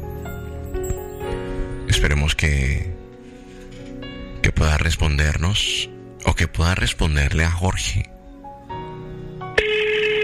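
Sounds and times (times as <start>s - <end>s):
speech: 2.0s - 3.0s, 4.6s - 8.1s
phone line ringing on an outgoing call: 9.6s - 10.2s.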